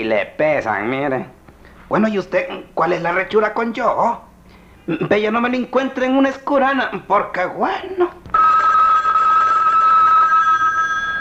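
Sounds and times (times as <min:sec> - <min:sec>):
speech: 0:00.0 - 0:04.3, 0:04.9 - 0:08.2
telephone ringing with a high electronic tone: 0:08.3 - 0:11.1.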